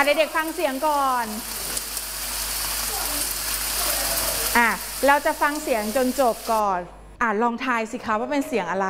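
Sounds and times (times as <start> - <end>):
speech: 0.0 - 1.6, 4.5 - 8.8
light rain falling: 0.0 - 6.6.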